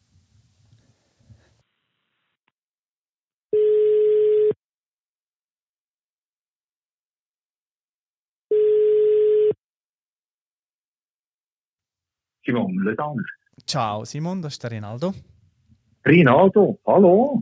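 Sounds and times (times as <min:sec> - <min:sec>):
outgoing call telephone ringing tone: 0:03.5 - 0:04.6, 0:08.5 - 0:09.6
speech: 0:12.5 - 0:15.3, 0:16.0 - 0:17.4.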